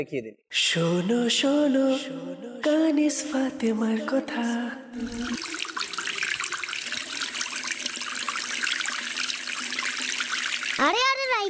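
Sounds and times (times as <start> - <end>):
speech: 0.0 - 5.6
tap water running into a sink while washing plates: 5.0 - 11.4.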